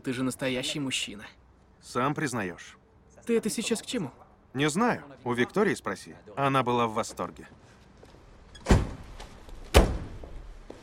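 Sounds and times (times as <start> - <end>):
speech: 0.0 - 7.7
car door slamming shut: 9.7 - 10.3.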